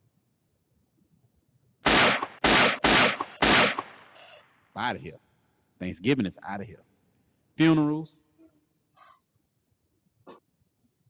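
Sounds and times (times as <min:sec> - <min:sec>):
gunshots: 0:01.8 - 0:04.2
speech: 0:04.8 - 0:06.9, 0:07.6 - 0:08.3.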